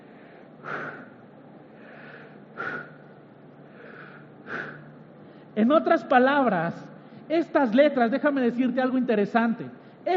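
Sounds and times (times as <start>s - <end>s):
sharp forceful inhales: 0.0s - 5.5s
speech: 5.6s - 10.1s.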